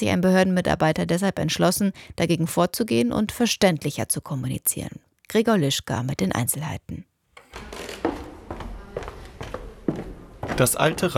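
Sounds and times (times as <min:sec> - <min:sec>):
speech: 0:00.0 - 0:07.9, 0:10.6 - 0:11.1
slow footsteps on a wooden floor: 0:07.3 - 0:11.1.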